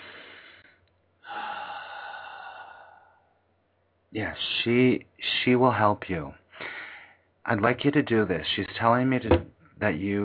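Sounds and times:
big deep breath: 0:00.0 - 0:03.4, 0:06.5 - 0:07.3
speech: 0:04.1 - 0:06.4, 0:07.4 - 0:10.2.

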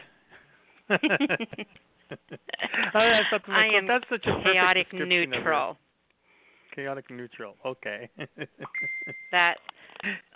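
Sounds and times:
speech: 0:00.9 - 0:05.8, 0:06.7 - 0:10.3
phone notification beep: 0:08.7 - 0:09.5.

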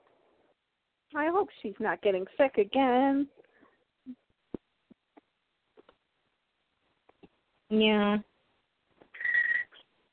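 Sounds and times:
speech: 0:01.1 - 0:04.2, 0:07.7 - 0:08.3
pet bird whistling a steady bright note: 0:09.2 - 0:09.8
pet bird chirp: 0:09.2 - 0:09.9.

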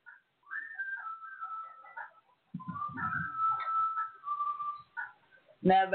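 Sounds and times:
thin wavering whistling drawn in on an inhaled breath: 0:00.4 - 0:05.2
speech: 0:05.6 - 0:05.9.

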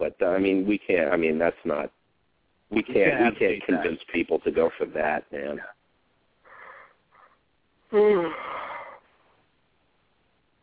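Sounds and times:
speech: 0:00.0 - 0:02.0, 0:02.7 - 0:05.8, 0:07.9 - 0:08.6
person yawning close against the microphone: 0:08.0 - 0:09.0.

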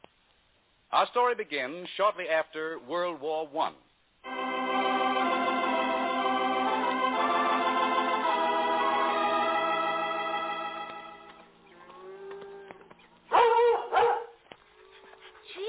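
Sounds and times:
speech: 0:00.9 - 0:03.8
sustained musical passage: 0:04.2 - 0:11.5
German shepherd barking: 0:13.3 - 0:14.4
German shepherd whimpering yips: 0:13.4 - 0:15.6.

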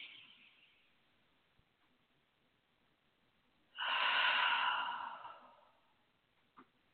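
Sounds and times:
deep breath through the nose during a breathing exercise: 0:03.8 - 0:05.9.

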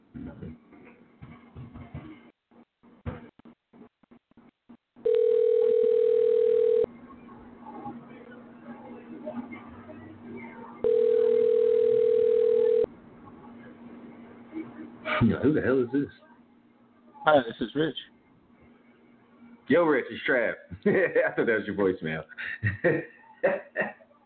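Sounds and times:
telephone ringback tone while calling someone: 0:05.0 - 0:06.9, 0:10.8 - 0:12.9
speech: 0:15.4 - 0:16.3, 0:17.3 - 0:18.2, 0:19.7 - 0:23.2
laughter: 0:20.7 - 0:21.4, 0:22.4 - 0:24.0.

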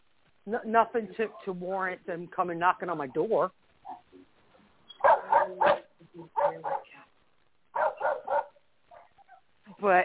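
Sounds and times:
speech: 0:00.4 - 0:04.3, 0:05.5 - 0:07.1, 0:09.8 - 0:10.0
two pet dogs barking: 0:05.0 - 0:06.9, 0:07.7 - 0:09.4.

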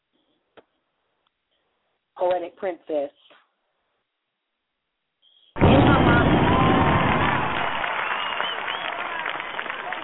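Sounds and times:
speech: 0:02.2 - 0:03.4
audience applause with many hands clapping: 0:05.6 - 0:10.0.

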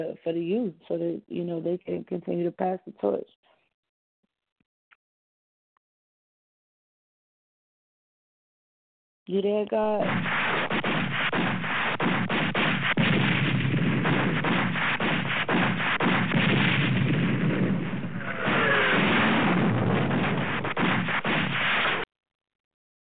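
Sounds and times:
speech: 0:00.0 - 0:03.5, 0:09.3 - 0:10.4
bombs-dropping sound effect barrage of rumbling blasts and crackling impacts: 0:09.9 - 0:22.1.

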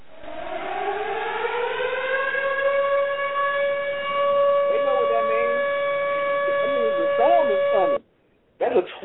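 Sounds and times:
tornado siren wailing: 0:00.0 - 0:08.0.

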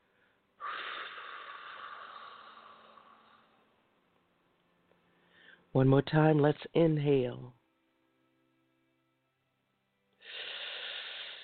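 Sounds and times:
slow exhale during a guided breathing exercise: 0:00.0 - 0:03.7, 0:05.1 - 0:05.7, 0:10.2 - 0:11.4
speech: 0:05.7 - 0:07.6.

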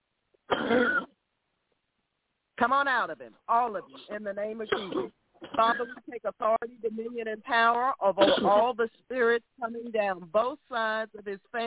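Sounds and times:
deep cough from the gut during a prayer: 0:00.5 - 0:01.2, 0:04.7 - 0:06.1, 0:08.2 - 0:08.6
speech: 0:00.7 - 0:01.1, 0:02.6 - 0:11.6.

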